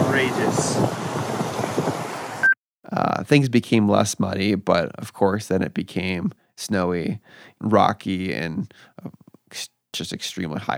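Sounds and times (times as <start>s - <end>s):
wind rushing in the high Himalaya: 0.0s - 2.5s
speech: 3.3s - 10.7s.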